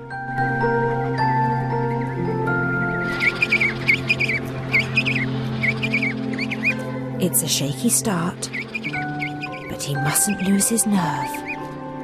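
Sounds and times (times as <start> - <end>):
steady bed of sustained musical tones: 0.0 - 12.0
young chick chirping: 3.0 - 6.8, 8.3 - 10.6
speech: 7.2 - 8.6, 9.9 - 11.5.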